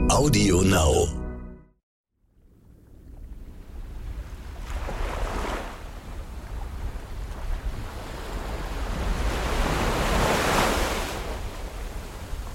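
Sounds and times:
speech: 0.2 - 1.2
steady wind and water noise: 2.3 - 12.5
sea waves lapping around a small private yacht in the Aegean Sea near Hydra: 3.5 - 12.5
broad swells of surf in the Aegean Sea: 4.6 - 12.5.

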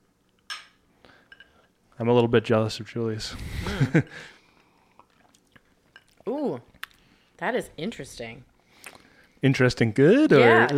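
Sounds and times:
drink glasses clinking in a toast: 0.5 - 1.7
speech: 2.0 - 4.4, 7.4 - 8.5, 9.4 - 10.7.

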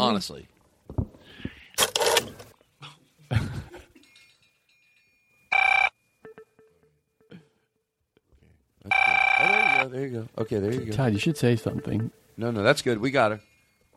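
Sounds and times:
speech: 0.0 - 1.0, 10.3 - 13.5
faint steady tone: 4.0 - 8.2, 8.8 - 13.9
telephone ringing in a short electronic burst: 5.5 - 7.0, 8.9 - 12.5.

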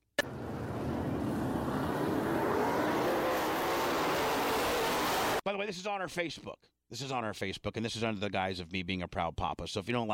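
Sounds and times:
race cars accelerating at a race restart: 0.2 - 5.4
speech: 5.5 - 10.1.

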